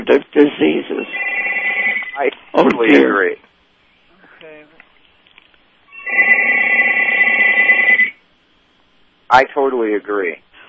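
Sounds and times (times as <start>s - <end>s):
speech: 0.1s - 1.3s, 2.2s - 3.4s, 9.3s - 10.4s
landline telephone ringing with a buzzing bell trill: 1.0s - 2.2s, 5.9s - 8.2s.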